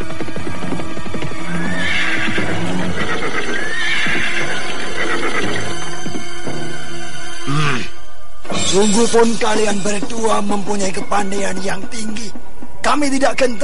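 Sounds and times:
horse hooves clip-clopping: 0.0s - 6.8s
horses neighing and whinnying: 1.4s - 6.0s
speech: 8.7s - 13.6s.

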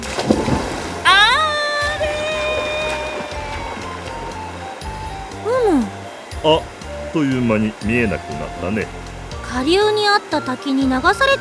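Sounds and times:
splash of something thrown into water: 0.0s - 4.3s
bright wavering whistle-like tone sweeping upward: 0.0s - 11.3s
speech: 6.4s - 11.3s.

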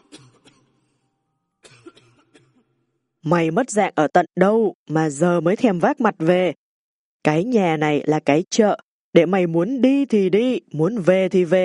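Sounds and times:
faint rough throaty coughing: 0.0s - 0.9s, 1.6s - 2.8s
speech: 3.2s - 6.6s, 7.2s - 11.6s.

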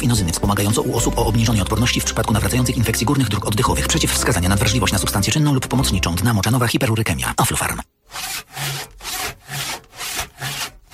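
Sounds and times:
speech: 0.0s - 8.6s
saw cutting the lower branches off a Christmas tree: 8.0s - 10.9s.

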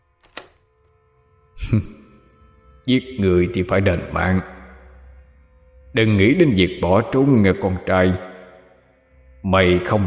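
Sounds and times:
door lock clicking shut: 0.1s - 0.7s
speech: 1.7s - 2.0s, 2.9s - 4.5s, 6.0s - 8.3s, 9.4s - 10.0s.

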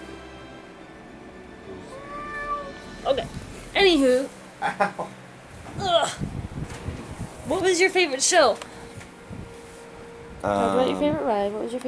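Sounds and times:
steady low hum: 0.0s - 11.8s
cat meowing: 1.8s - 2.9s
speech: 3.0s - 5.2s, 7.5s - 8.7s, 10.4s - 11.8s.

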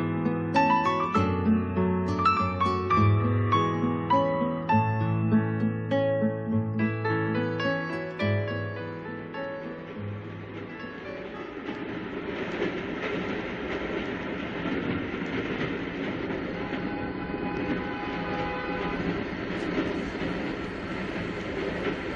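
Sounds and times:
moving train rumbling clatter: 0.0s - 22.1s
old locomotive whistle: 16.5s - 19.2s.

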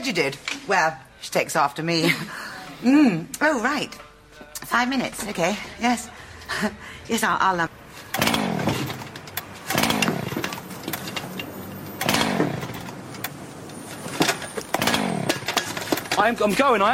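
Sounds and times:
speech: 0.0s - 8.4s, 16.2s - 16.9s
motorbike engine cranking and sputtering, failing to start: 8.1s - 16.3s.

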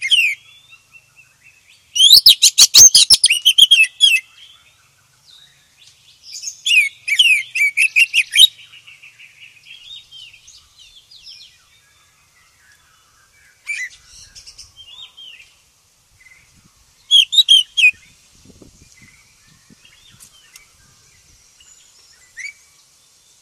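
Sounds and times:
Oriental magpie-robin song: 0.0s - 23.4s.

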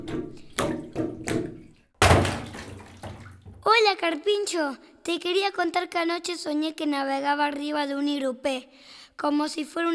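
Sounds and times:
water swishing: 0.0s - 3.6s
speech: 3.8s - 9.9s.

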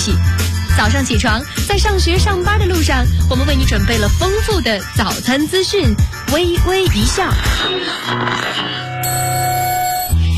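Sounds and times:
speech: 0.0s - 8.8s
alarm clock ringing with bell-like tones: 9.0s - 10.2s.

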